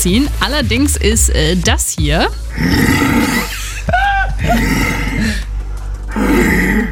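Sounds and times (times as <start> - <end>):
speech: 0.0 - 3.6, 4.4 - 5.4
stag roaring during the rut: 2.5 - 3.5, 4.4 - 5.2, 6.1 - 6.9.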